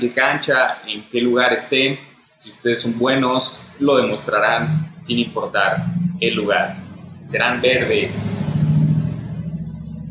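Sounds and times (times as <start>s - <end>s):
speech: 0.0s - 8.6s
poorly tuned car engine droning: 3.0s - 10.1s.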